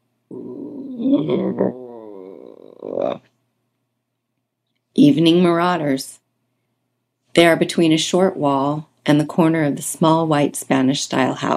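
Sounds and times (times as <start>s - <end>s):
person imitating a small female dog's low growl at three skunks: 0.3s - 3.3s
speech: 1.0s - 1.8s, 5.0s - 6.2s, 7.4s - 11.5s.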